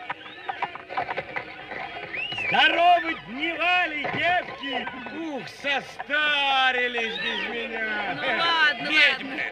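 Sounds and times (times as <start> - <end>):
horse hooves stamping as a radio play sound effect: 0.0 - 7.6
speech: 2.5 - 9.5.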